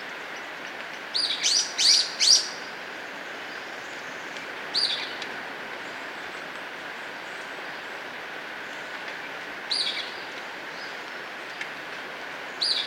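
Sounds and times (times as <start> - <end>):
steady background hiss: 0.0 - 12.8
golden-crowned flycatcher calls in Ecuador: 1.2 - 2.6.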